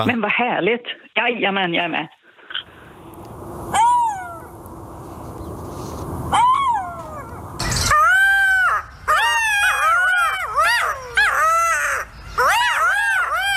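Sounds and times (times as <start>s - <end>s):
speech: 0.0s - 2.2s
golden jackals calling: 6.3s - 13.5s.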